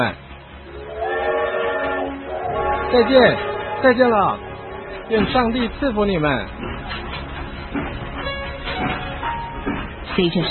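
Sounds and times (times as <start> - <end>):
speech: 0.0 - 0.2, 2.9 - 4.5, 5.1 - 7.0, 10.2 - 10.4
train rumbling as it pulls away from a station platform in Scotland: 0.0 - 10.4
faint tonal whine of train machinery: 0.4 - 6.7.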